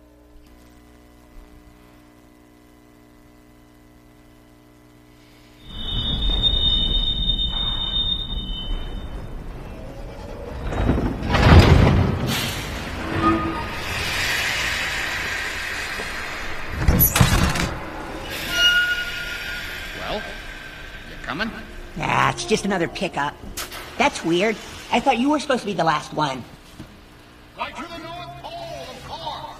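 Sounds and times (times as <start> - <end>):
train wheels squealing on rails: 5.6 - 9.8, 18.2 - 23.2
heavy train rumbling: 5.6 - 25.4
speech: 22.5 - 23.4, 24.0 - 26.6.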